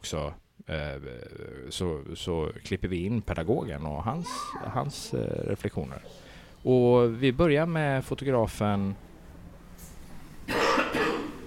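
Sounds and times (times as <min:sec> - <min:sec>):
speech: 0:00.0 - 0:09.1
museum visitor coughing: 0:10.5 - 0:11.4.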